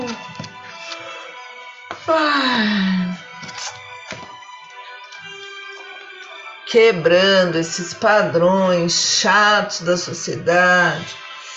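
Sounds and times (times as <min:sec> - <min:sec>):
soft steady music: 0:00.0 - 0:11.5
speech: 0:02.1 - 0:03.0, 0:06.7 - 0:11.2
deep breath with voiced sighing exhale: 0:02.1 - 0:03.2.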